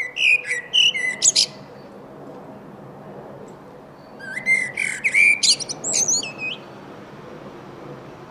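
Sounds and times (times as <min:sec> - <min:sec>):
Eurasian blackbird Turdus merula song: 0:00.0 - 0:02.0, 0:04.0 - 0:06.8.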